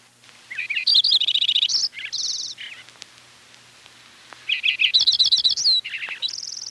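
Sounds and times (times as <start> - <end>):
Lincoln's sparrow singing: 0.5 - 2.9, 4.4 - 6.7.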